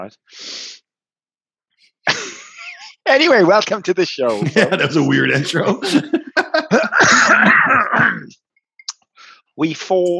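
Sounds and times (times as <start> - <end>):
speech: 0.0 - 0.8, 2.0 - 2.4, 3.1 - 8.4, 9.6 - 10.1
laughter: 2.1 - 3.0, 3.6 - 8.3
person coughing with some throat clearing: 4.3 - 8.3.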